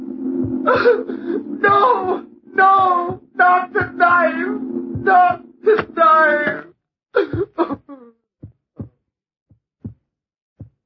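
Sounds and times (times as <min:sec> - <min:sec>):
dull low heartbeat thumps: 0:00.4 - 0:00.8, 0:01.6 - 0:06.6, 0:07.2 - 0:07.8, 0:08.4 - 0:10.0, 0:10.6 - 0:10.8
speech: 0:00.6 - 0:08.1
sharp gasping cough: 0:07.2 - 0:08.1.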